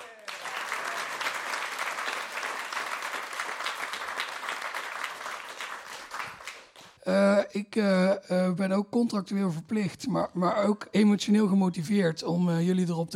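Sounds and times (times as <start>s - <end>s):
room full of people applauding: 0.0s - 7.0s
speech: 7.1s - 13.1s.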